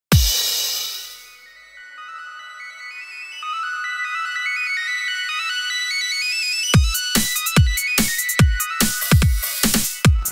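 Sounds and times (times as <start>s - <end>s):
electronic remix: 0.1s - 10.3s.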